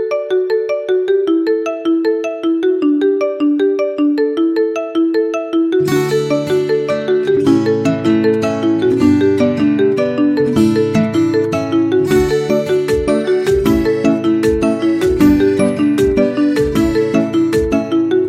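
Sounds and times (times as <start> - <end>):
Mi Note 10 phone ringtone: 0.0 - 18.2.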